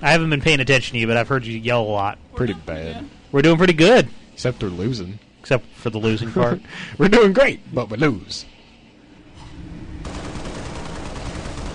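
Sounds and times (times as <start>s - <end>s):
speech: 0.0s - 8.5s
rapid dense gunfire from a video game: 9.9s - 11.7s.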